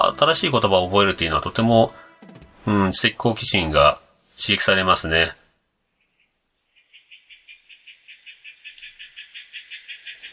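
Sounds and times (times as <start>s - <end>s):
speech: 0.1s - 2.0s, 2.6s - 5.4s
frogs croaking outside: 6.0s - 10.3s.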